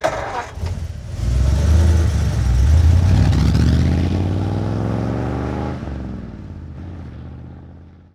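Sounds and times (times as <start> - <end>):
1947 Ford V8 truck engine starting: 0.0 - 4.0
1947 Ford V8 truck driving away fast: 0.0 - 8.0.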